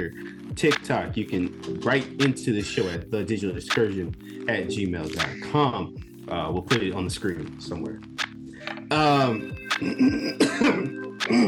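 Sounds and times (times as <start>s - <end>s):
speech: 0.0s - 8.2s, 8.9s - 11.4s
throat clearing to get rid of mucus: 9.8s - 11.4s.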